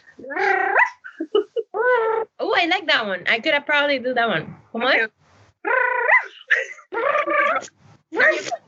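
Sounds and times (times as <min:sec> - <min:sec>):
person imitating a dog barking: 0:00.2 - 0:01.1, 0:05.7 - 0:08.6
speech: 0:02.7 - 0:05.2, 0:07.6 - 0:08.6.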